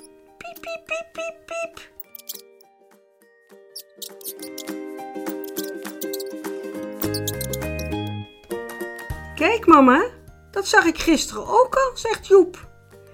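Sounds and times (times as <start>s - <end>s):
high thin mouse squeaks: 0.0s - 0.8s, 1.6s - 2.6s, 3.7s - 8.1s
speech: 0.6s - 2.5s, 9.4s - 12.7s
tonal music with bright notes and a deep bass line: 6.8s - 8.4s.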